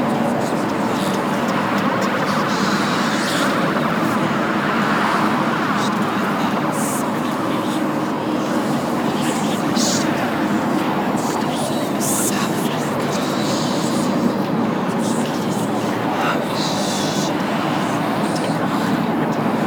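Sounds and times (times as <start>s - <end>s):
tunnel ambience loop: 0.0s - 19.6s.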